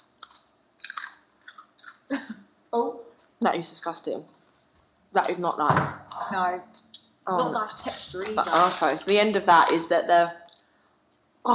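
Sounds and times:
crunchy chewing of a dry pork rind: 0.0s - 2.1s
speech: 2.1s - 4.4s, 5.1s - 10.4s.

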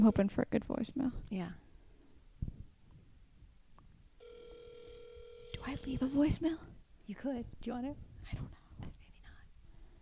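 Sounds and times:
speech: 0.0s - 1.6s, 5.6s - 9.0s
low noise: 0.0s - 9.9s
electronic ring tone on an outgoing phone call: 4.2s - 6.1s.

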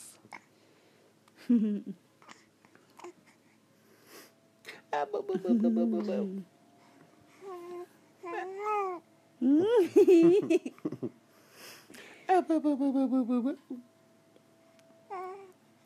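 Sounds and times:
speech: 1.5s - 2.0s, 5.0s - 6.5s, 9.4s - 11.2s, 12.4s - 13.9s
infant girl babbling and cooing: 7.4s - 9.0s, 15.1s - 15.6s.

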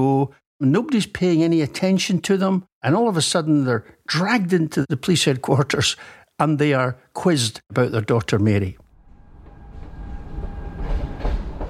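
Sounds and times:
speech: 0.0s - 8.8s
train clattering along rails: 9.4s - 11.6s.

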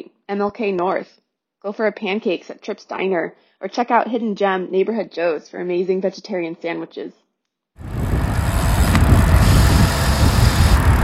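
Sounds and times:
speech: 0.3s - 7.2s
car engines droning and idling at a busy street crossing: 7.8s - 11.0s.

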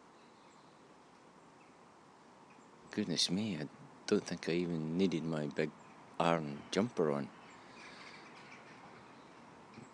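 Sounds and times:
steady broadband noise: 0.0s - 9.9s
speech: 2.9s - 7.4s
crows calling outdoors: 7.5s - 9.1s.

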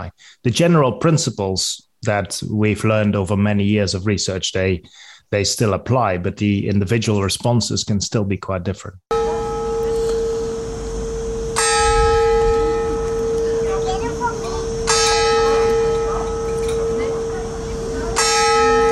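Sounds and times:
speech: 0.0s - 9.1s
church bell tolling: 9.1s - 18.9s.

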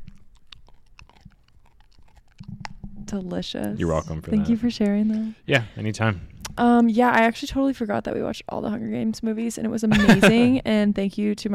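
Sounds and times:
small dog chewing on a couch: 0.0s - 5.0s
speech: 3.1s - 11.5s
laughter: 9.9s - 10.6s.

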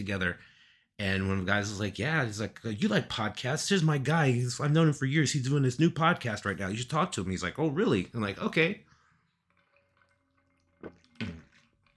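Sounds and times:
speech: 0.0s - 8.9s, 10.8s - 11.4s
person sipping and swallowing water: 9.0s - 11.9s.

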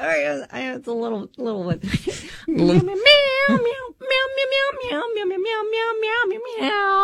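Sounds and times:
speech: 0.0s - 7.0s
person singing a tune in cat-like meows: 2.8s - 7.0s.

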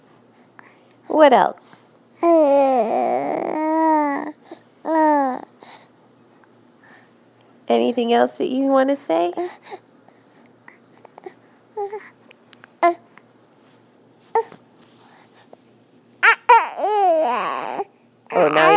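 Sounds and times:
speech: 1.2s - 4.3s, 7.7s - 9.8s
baby fussing: 2.2s - 5.5s, 16.2s - 18.7s.

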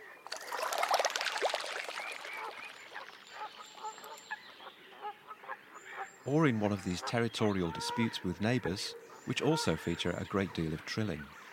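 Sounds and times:
little grebe pattering across the water surface: 0.2s - 4.4s
speech: 6.3s - 11.4s.

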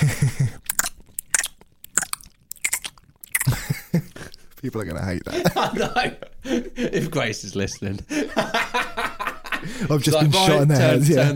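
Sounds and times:
laughter: 0.0s - 0.6s, 3.5s - 4.4s, 5.2s - 11.3s
wet mouth sounds: 0.0s - 4.6s
crunchy chewing and biting of food during a taste test: 0.5s - 4.6s
speech: 3.9s - 8.8s, 9.7s - 11.3s.

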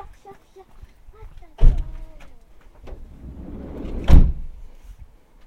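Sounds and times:
door shutting with a loud thud: 1.6s - 2.0s, 2.8s - 4.5s
heavy bang: 2.8s - 4.6s.

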